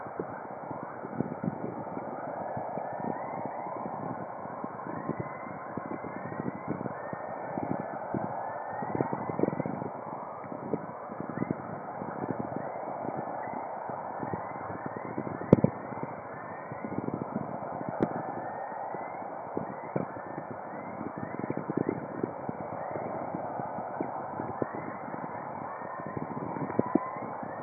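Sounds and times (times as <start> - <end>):
chorus hiss and whistlers, sounds of space: 0.0 - 27.6.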